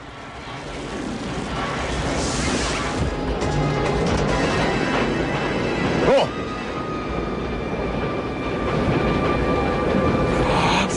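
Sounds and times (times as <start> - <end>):
train rumbling with a faint whining hum: 0.0 - 10.9.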